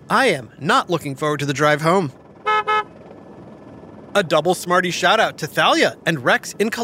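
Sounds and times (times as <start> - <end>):
faint low rumble of road traffic: 0.0 - 6.8
speech: 0.1 - 2.2, 4.2 - 6.8
car horn honking: 2.4 - 3.0.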